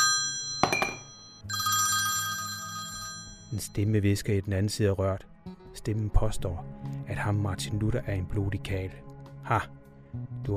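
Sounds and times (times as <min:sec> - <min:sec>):
telephone ringing in an office: 0:00.0 - 0:03.8
speech: 0:03.5 - 0:10.5.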